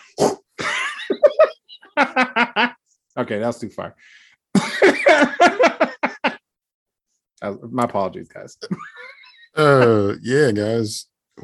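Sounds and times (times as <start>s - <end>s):
person imitating fart noises: 0.1s - 0.6s
laughter: 0.6s - 2.8s, 4.6s - 6.4s
speech: 2.2s - 5.6s, 7.4s - 9.0s, 9.6s - 11.4s.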